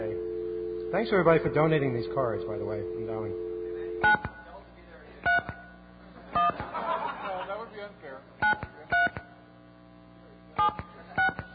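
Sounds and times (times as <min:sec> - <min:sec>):
telephone touch-tone beeps from keying in a phone number: 0:00.0 - 0:04.3, 0:10.6 - 0:11.5
speech: 0:00.9 - 0:04.4
people talking and laughing quietly: 0:06.0 - 0:08.2.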